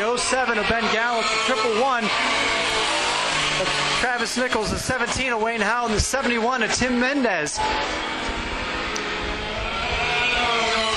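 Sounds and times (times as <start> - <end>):
race car engines roaring around a dirt track: 0.0 - 10.9
speech: 0.3 - 8.5.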